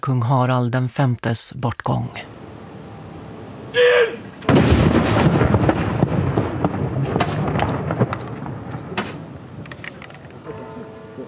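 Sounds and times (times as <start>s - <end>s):
speech: 0.0s - 2.3s
artillery gun salute booming reports: 2.3s - 10.5s
dense outdoor din: 2.3s - 11.2s.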